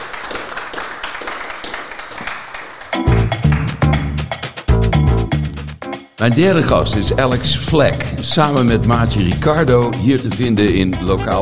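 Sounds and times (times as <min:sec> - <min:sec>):
audience applause: 0:00.0 - 0:04.2
loud bright music with a heavy bass: 0:03.0 - 0:11.4
speech: 0:06.2 - 0:11.4.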